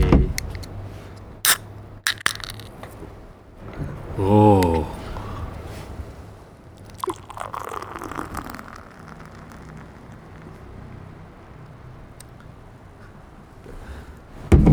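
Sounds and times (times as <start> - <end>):
can or bottle of dark beer opening click: 0.1 - 0.8, 1.5 - 3.0
beer foam fizzing: 0.5 - 3.1, 4.1 - 12.4
speech: 4.2 - 4.6
dark beer pouring into a glass at home: 4.2 - 6.2, 6.8 - 12.3.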